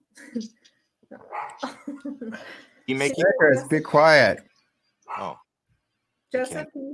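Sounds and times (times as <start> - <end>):
speech: 0.3 - 4.5, 5.1 - 5.4, 6.3 - 6.9
dog barking: 1.3 - 1.6, 5.1 - 5.4
human voices: 5.1 - 5.4.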